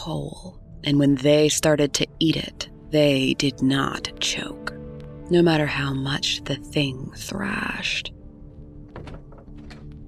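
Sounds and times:
speech: 0:00.0 - 0:08.2
person falling out of bed onto the floor: 0:08.9 - 0:10.0.

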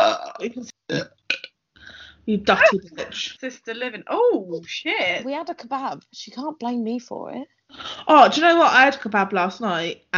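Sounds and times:
loud burp: 0:00.0 - 0:01.5
speech: 0:00.4 - 0:01.2, 0:02.3 - 0:10.1.

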